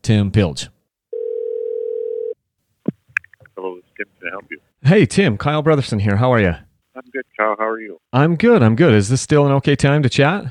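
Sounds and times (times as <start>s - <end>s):
speech: 0.1s - 0.8s, 4.0s - 10.4s
telephone ringing tone before call connects: 1.1s - 2.4s.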